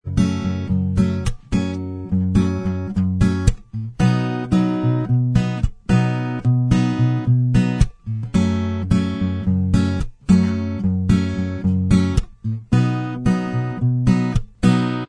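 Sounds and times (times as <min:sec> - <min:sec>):
acoustic instrumental music: 0:00.0 - 0:15.0.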